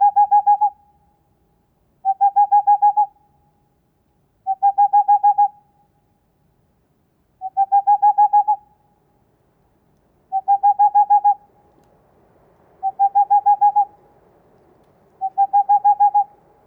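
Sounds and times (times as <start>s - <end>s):
male Tengmalm's owl giving runs of mellow hoots: 0.0s - 0.8s, 2.0s - 3.1s, 4.5s - 5.6s, 7.4s - 8.6s, 10.3s - 11.4s, 12.8s - 14.0s, 15.2s - 16.4s
faint background hiss: 0.0s - 16.6s.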